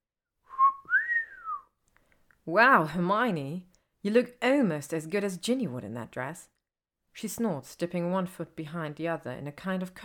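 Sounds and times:
man letting out a low wolf whistle at a woman: 0:00.5 - 0:01.7
speech: 0:02.5 - 0:06.5, 0:07.2 - 0:10.0.

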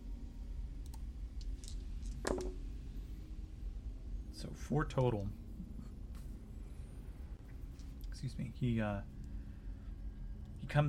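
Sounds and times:
low steady hum: 0:00.0 - 0:10.8
dice clattering across a hard surface: 0:01.4 - 0:02.6
speech: 0:04.4 - 0:05.4, 0:08.2 - 0:09.2.

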